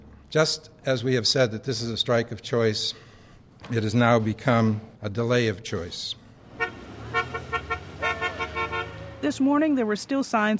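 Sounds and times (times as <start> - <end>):
low traffic rumble: 0.0 - 10.5
speech: 0.3 - 6.2, 9.2 - 10.5
car horns honking in the street: 6.5 - 9.4.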